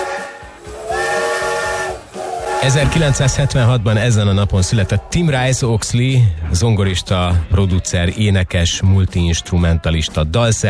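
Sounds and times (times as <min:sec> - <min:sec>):
steam locomotive whistle blast: 0:00.0 - 0:03.7
steady hiss of steam: 0:00.0 - 0:05.4
speech: 0:02.6 - 0:10.6.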